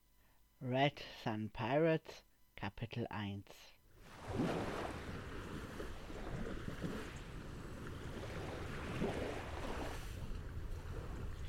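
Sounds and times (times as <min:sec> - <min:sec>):
speech: 0:00.6 - 0:04.8
wind: 0:03.9 - 0:11.4
sea surf: 0:04.0 - 0:11.4
sea water lapping and sloshing around a boat: 0:04.0 - 0:11.4.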